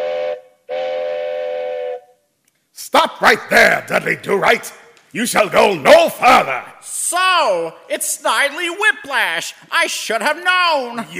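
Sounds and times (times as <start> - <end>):
train whistle blasts at a railroad crossing: 0.0 - 2.2
speech: 2.8 - 11.1.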